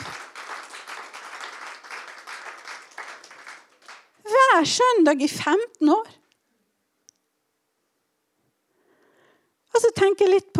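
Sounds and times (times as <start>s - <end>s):
audience applause: 0.0s - 4.2s
speech: 4.6s - 6.2s, 10.2s - 10.5s.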